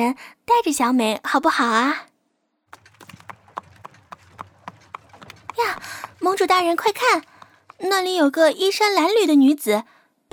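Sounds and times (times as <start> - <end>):
speech: 0.0 - 2.1, 5.6 - 10.3
ridden horse hooves clip-clopping: 2.7 - 9.2.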